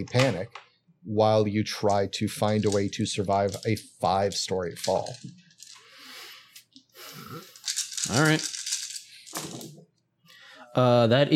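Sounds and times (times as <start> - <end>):
speech: 0.0 - 5.4, 8.0 - 8.6, 10.8 - 11.3
handful of dice clattering and rattling across a hard surface: 1.8 - 5.9, 7.6 - 9.8.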